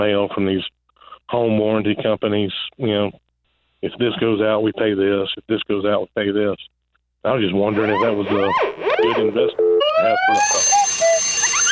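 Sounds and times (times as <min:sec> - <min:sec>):
speech: 0:00.0 - 0:03.2, 0:03.8 - 0:10.8
cuckoo clock sound effect: 0:07.7 - 0:11.7.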